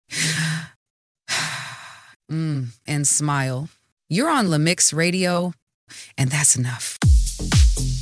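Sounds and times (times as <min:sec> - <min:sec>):
deep breath in and out: 0:00.1 - 0:02.2
speech: 0:02.3 - 0:07.9.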